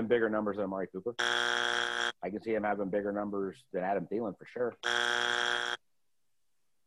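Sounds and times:
speech: 0.0s - 5.2s
loud harsh buzzer: 1.2s - 2.2s, 4.8s - 5.8s.

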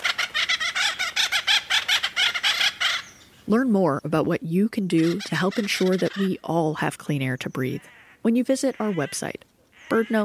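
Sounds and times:
acorn woodpecker squawking calls: 0.0s - 3.5s, 4.9s - 6.5s, 7.4s - 10.2s
speech: 3.5s - 10.2s.

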